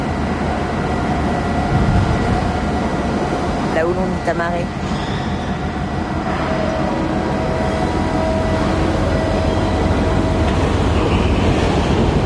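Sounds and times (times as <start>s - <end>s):
faint mechanical hum on a container terminal quay: 0.0s - 12.2s
rumbling wash of noise on a container terminal quay at dawn: 0.2s - 4.8s
speech: 3.8s - 5.2s.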